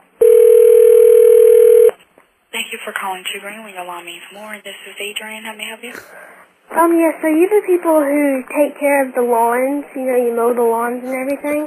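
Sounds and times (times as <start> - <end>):
loud steady telephone dial tone: 0.2 - 1.9
speech: 3.0 - 11.6.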